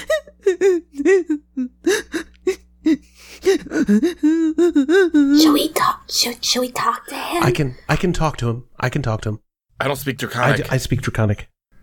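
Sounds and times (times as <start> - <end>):
person imitating a kobold whimpering: 0.0 - 5.6
speech: 3.9 - 4.1, 6.3 - 11.5.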